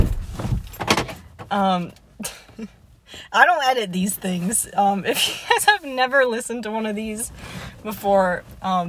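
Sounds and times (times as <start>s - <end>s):
door thud: 0.0s - 1.1s
rustling knocks: 0.0s - 1.5s
speech: 1.5s - 8.8s.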